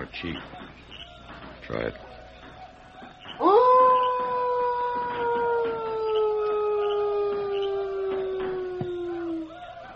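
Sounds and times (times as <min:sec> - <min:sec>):
faint noise: 0:00.0 - 0:09.9
speech: 0:00.1 - 0:00.8, 0:01.7 - 0:02.1
person imitating a wolf howl as a wolf call: 0:03.4 - 0:09.5.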